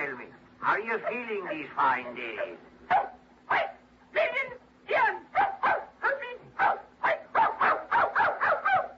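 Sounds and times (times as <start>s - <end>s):
speech: 0.6s - 2.7s
dog whiny barking and whimpering yelps: 0.9s - 3.8s, 5.3s - 8.9s.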